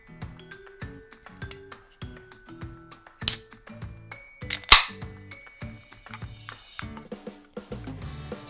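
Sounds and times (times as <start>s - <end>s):
music: 0.0s - 8.4s
beer can cracking open with pop and fizzing hiss: 3.2s - 3.4s, 4.5s - 5.0s.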